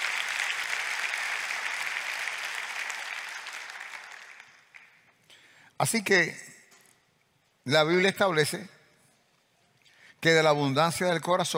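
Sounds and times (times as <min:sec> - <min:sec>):
crowd clapping in sustained applause: 0:00.0 - 0:05.0
speech: 0:05.8 - 0:06.4, 0:07.7 - 0:08.8, 0:10.2 - 0:11.5.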